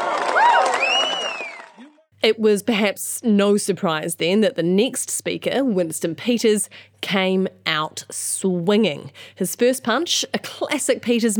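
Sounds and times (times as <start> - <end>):
crowd cheering and clapping: 0.0 - 2.0
voices whooping: 0.0 - 2.0
shrill whistle sliding in pitch: 0.6 - 1.9
speech: 2.2 - 11.3.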